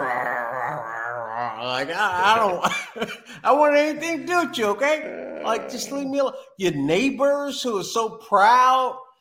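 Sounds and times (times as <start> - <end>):
person imitating a dog growling: 0.0 - 2.6, 4.8 - 6.2
speech: 1.8 - 9.0
laughter: 2.1 - 3.4.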